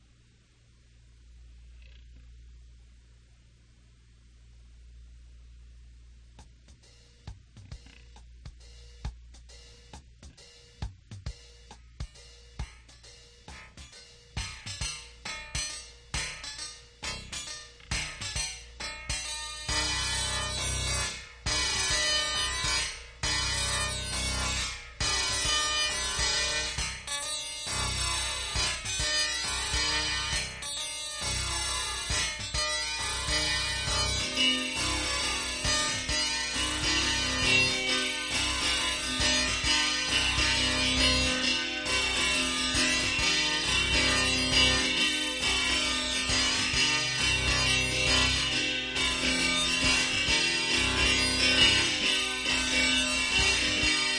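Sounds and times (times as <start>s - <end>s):
flanged harpsichord: 6.7s - 54.1s.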